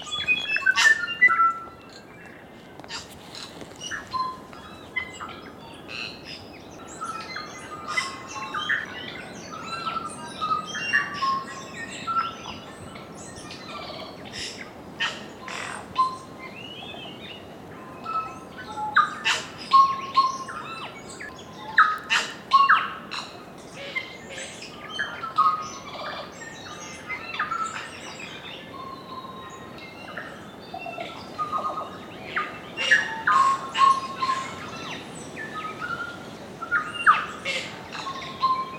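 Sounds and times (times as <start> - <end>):
New Zealand forest birds singing: 0.0 - 38.7.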